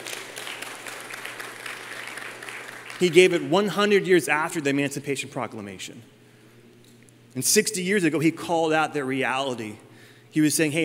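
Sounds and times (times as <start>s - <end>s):
audience applause during a speech: 0.0s - 3.4s
speech: 3.0s - 6.2s, 7.4s - 10.8s.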